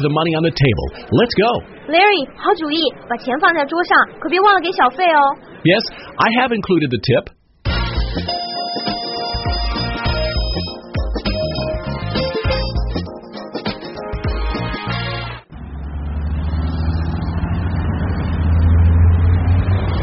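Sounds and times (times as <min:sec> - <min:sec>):
speech: 0:00.0 - 0:07.4
upbeat music: 0:07.7 - 0:15.4
bus engine rumbling as the bus pulls away: 0:15.2 - 0:20.0.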